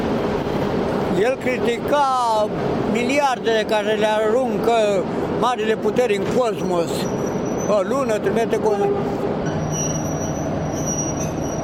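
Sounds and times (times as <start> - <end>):
train passing through a rail yard: 0.0 - 11.6
speech: 1.2 - 9.2
wheels squealing on rails: 6.6 - 11.6.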